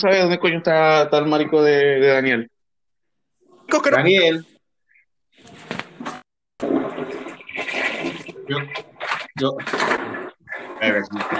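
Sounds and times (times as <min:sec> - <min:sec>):
speech: 0:00.0 - 0:02.5, 0:03.7 - 0:04.5, 0:08.5 - 0:08.8, 0:09.4 - 0:10.0, 0:10.8 - 0:11.3
person urinating into toilet water: 0:06.6 - 0:11.3.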